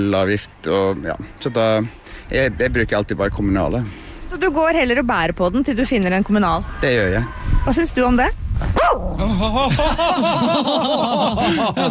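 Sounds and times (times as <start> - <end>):
speech: 0.0 - 11.9
dog barking and yipping: 8.8 - 9.1
laughter: 9.2 - 11.9.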